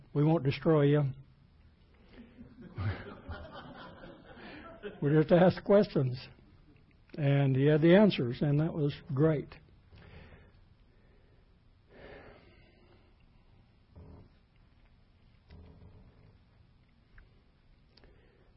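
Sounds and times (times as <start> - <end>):
low hiss: 0.0 - 18.5
speech: 0.2 - 1.2, 4.8 - 6.4, 7.2 - 9.6
laughter: 2.4 - 5.1
quiet rasping snoring: 15.5 - 16.4.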